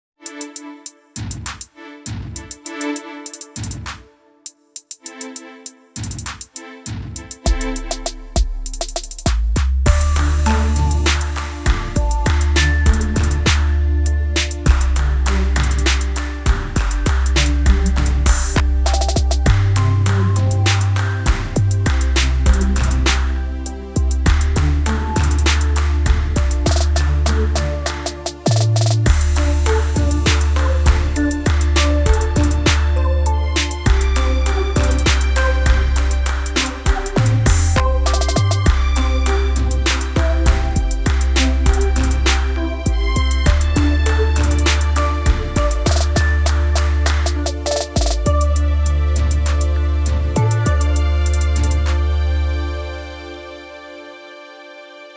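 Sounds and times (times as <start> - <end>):
music: 0.2 - 55.1.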